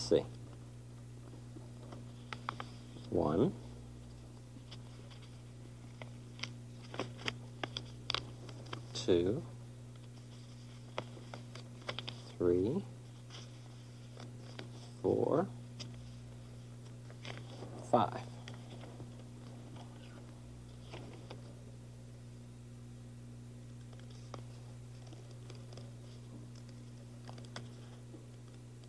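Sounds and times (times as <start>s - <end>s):
speech: 0.1s - 0.4s, 3.1s - 3.6s, 9.0s - 9.5s, 12.4s - 12.9s, 15.0s - 15.6s, 17.9s - 18.3s
paper being creased and folded to make paper dolls: 1.8s - 3.1s, 4.1s - 9.0s, 10.0s - 12.4s, 13.0s - 15.0s, 15.8s - 21.5s, 23.9s - 28.6s.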